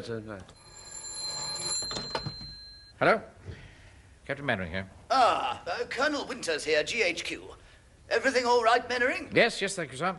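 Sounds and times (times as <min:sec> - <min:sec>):
speech: 0:00.0 - 0:00.6, 0:03.0 - 0:03.6, 0:04.3 - 0:10.1
telephone bell ringing for an incoming call: 0:00.6 - 0:02.9.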